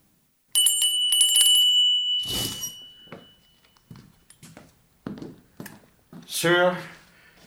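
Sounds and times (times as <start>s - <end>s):
small bell rung to summon a servant: 0.5s - 3.9s
softer knocks and shuffles: 2.2s - 7.4s
speech: 6.4s - 7.0s.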